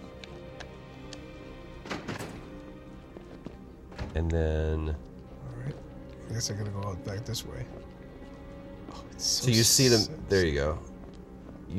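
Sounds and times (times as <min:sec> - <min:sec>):
heavy security door unlatching and swinging open: 0:01.7 - 0:02.9, 0:03.8 - 0:04.3
speech: 0:04.2 - 0:05.1, 0:05.7 - 0:08.0, 0:08.9 - 0:10.9.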